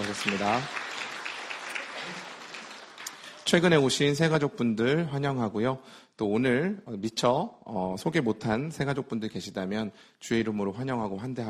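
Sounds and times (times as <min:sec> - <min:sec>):
church congregation applauding in welcome: 0:00.0 - 0:04.2
speech: 0:00.1 - 0:00.8, 0:03.5 - 0:11.4.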